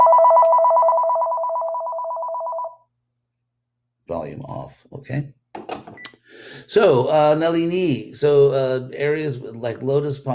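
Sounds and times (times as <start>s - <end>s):
mobile phone ringing with a warbling two-tone trill: 0.0s - 2.8s
speech: 4.2s - 5.4s, 6.7s - 10.3s.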